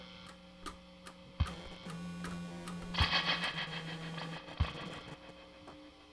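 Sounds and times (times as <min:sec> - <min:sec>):
electricity soundscape: 0:01.5 - 0:05.7.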